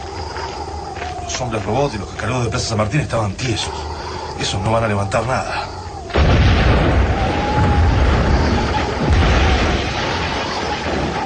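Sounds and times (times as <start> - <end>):
speech: 1.3 - 5.7
muffled explosion with rumbling tail in a radio drama: 6.1 - 11.2.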